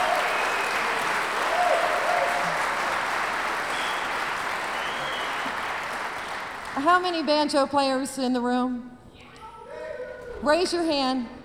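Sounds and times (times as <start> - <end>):
concert audience applauding: 0.0 - 7.5
speech: 6.8 - 9.0, 10.4 - 11.4.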